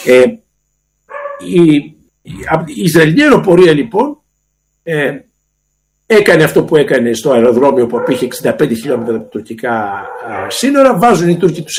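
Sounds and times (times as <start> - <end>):
speech: 0.0 - 0.4, 1.4 - 4.2, 4.8 - 5.3, 6.1 - 11.7
several dogs barking at home: 1.1 - 1.6, 7.6 - 10.7.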